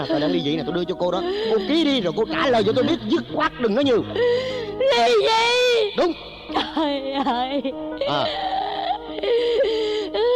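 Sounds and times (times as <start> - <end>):
speech: 0.0 - 8.5
woman crying and whimpering during a tense argument over divorce: 0.0 - 10.3
woman gasping: 4.1 - 4.9, 8.1 - 10.3.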